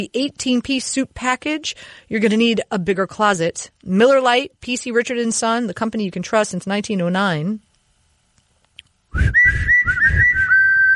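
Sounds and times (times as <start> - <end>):
speech: 0.0 - 7.7, 9.1 - 10.5
person whistling: 9.1 - 10.9.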